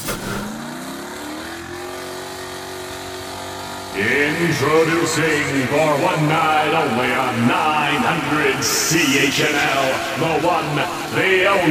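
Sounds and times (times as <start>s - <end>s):
powerful monster truck engine revving: 0.0s - 0.6s
speech: 4.0s - 11.6s.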